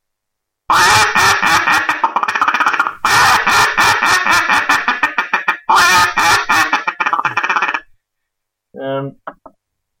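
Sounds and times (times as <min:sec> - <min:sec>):
mallard duck hunting call blown in raspy quacks: 0:00.7 - 0:07.9.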